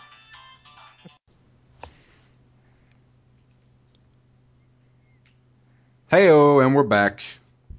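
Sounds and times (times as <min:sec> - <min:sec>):
phone ringtone playing a melodic electronic tune: 0:00.0 - 0:01.2
speech: 0:06.1 - 0:07.4.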